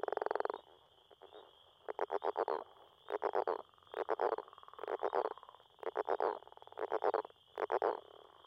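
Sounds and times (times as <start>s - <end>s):
northern leopard frog giving a rattling pulsed snore: 1.2s - 8.4s.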